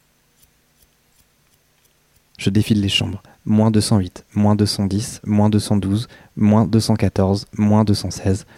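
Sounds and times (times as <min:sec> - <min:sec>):
quiet humming background: 0:00.0 - 0:08.5
scissors snipping small things: 0:00.4 - 0:02.4
speech: 0:02.4 - 0:08.5.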